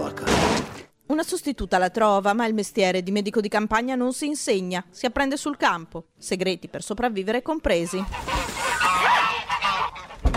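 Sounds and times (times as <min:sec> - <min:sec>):
speech: 0:01.2 - 0:08.6
aggressive male geese honking: 0:07.7 - 0:10.3
goose low squawk: 0:07.7 - 0:10.3.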